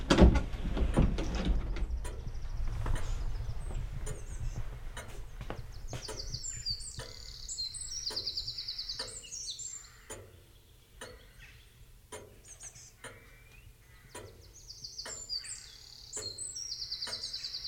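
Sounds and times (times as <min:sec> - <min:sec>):
birds chirping outdoors: 0:00.7 - 0:17.6
sharp clicks: 0:00.9 - 0:03.2, 0:04.0 - 0:10.4, 0:12.1 - 0:15.4.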